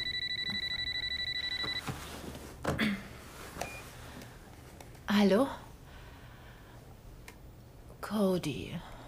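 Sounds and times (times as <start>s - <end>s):
electronic phone ringtone trilling: 0.0s - 1.8s
speech: 5.2s - 5.6s, 8.1s - 8.9s.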